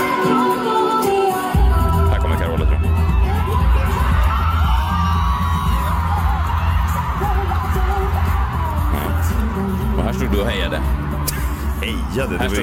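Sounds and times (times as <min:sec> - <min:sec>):
large concert crowd cheering and applauding: 0:00.0 - 0:12.6
whoops and yells: 0:02.7 - 0:09.7.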